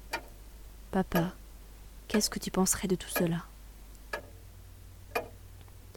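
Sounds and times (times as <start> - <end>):
crisp clock ticks: 0.1 - 0.4, 1.1 - 1.4, 2.1 - 2.4, 3.1 - 3.4, 4.1 - 4.3, 5.1 - 5.4
speech: 0.9 - 1.4, 2.1 - 3.5.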